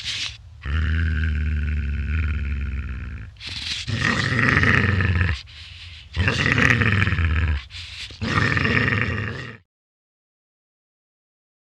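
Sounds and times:
dog growling: 0:00.0 - 0:09.7.

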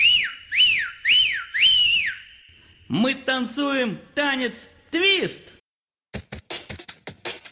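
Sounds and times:
person whistling quick bright sliding notes: 0:00.0 - 0:02.6
speech: 0:02.9 - 0:05.6.

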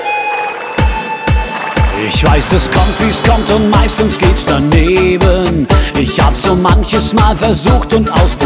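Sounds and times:
horse neighing: 0:00.3 - 0:03.7
speech: 0:02.2 - 0:08.4.

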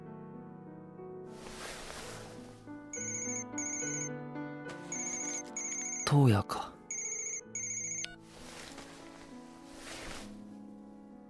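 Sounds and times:
soft sustained musical backdrop: 0:00.0 - 0:11.2
mobile phone ringtone chiming in bright repeating tones: 0:03.0 - 0:04.1, 0:04.7 - 0:08.6
speech: 0:06.1 - 0:06.8.

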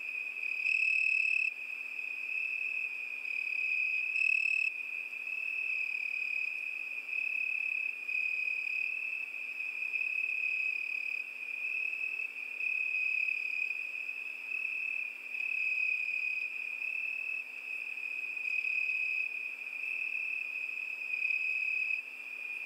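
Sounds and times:
crickets trilling at night: 0:00.0 - 0:22.6.

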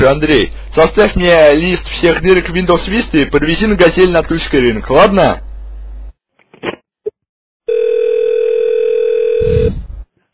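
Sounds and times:
speech: 0:00.0 - 0:05.4
telephone dial tone after the other party hangs up: 0:07.7 - 0:09.5.

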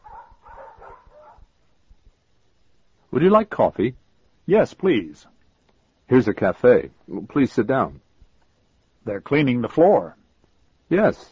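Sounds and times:
dogs yipping and whimpering in a pet shop: 0:00.0 - 0:01.4
speech: 0:03.1 - 0:05.3, 0:06.1 - 0:08.0, 0:09.0 - 0:10.2, 0:10.9 - 0:11.3.

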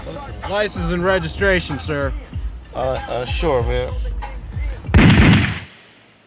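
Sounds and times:
speech: 0:00.5 - 0:04.1
gunshot at a traffic stop: 0:04.9 - 0:05.9.

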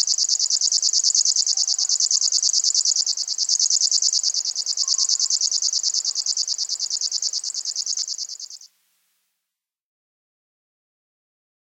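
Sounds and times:
river warbler song: 0:00.0 - 0:08.7.

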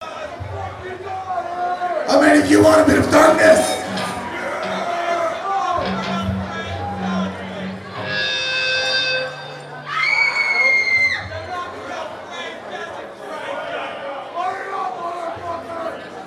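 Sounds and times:
excited chatter and cheering: 0:00.0 - 0:16.2
speech: 0:02.1 - 0:03.8
crowd of girls shrieking and squealing: 0:09.9 - 0:11.3.

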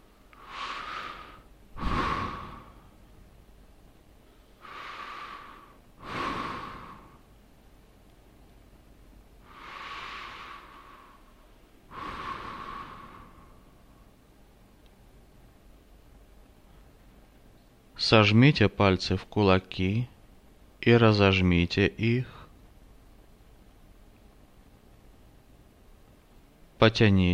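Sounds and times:
slow deep breaths close to the mic: 0:00.0 - 0:03.0, 0:04.2 - 0:07.3, 0:09.4 - 0:14.2
speech: 0:18.0 - 0:20.1, 0:20.8 - 0:22.4, 0:26.8 - 0:27.3.

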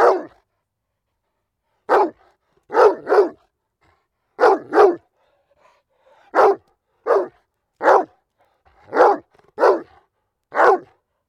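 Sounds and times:
dog barking: 0:00.0 - 0:00.4, 0:01.9 - 0:03.5, 0:04.4 - 0:05.1, 0:06.2 - 0:08.2, 0:08.8 - 0:11.0.

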